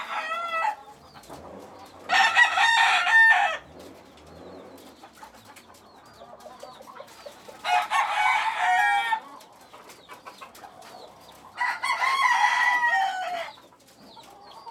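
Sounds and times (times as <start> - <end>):
chicken crowing in a coop: 0.0 - 0.8, 2.1 - 3.6, 7.6 - 9.3, 11.6 - 13.6
chickens clucking in a coop: 0.0 - 14.7.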